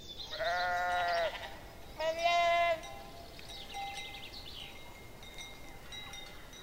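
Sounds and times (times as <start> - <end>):
soft outdoor noise: 0.0 - 6.6
flock of sheep bleating: 0.3 - 2.9.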